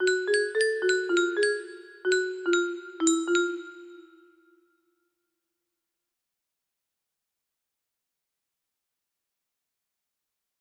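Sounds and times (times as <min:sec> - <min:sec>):
music box melody: 0:00.0 - 0:04.4.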